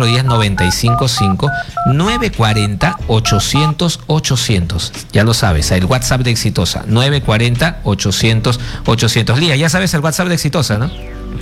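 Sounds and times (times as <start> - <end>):
telephone keypad dialing tones: 0.0 - 3.7
person talking loudly: 0.0 - 3.8
speech: 0.0 - 11.4.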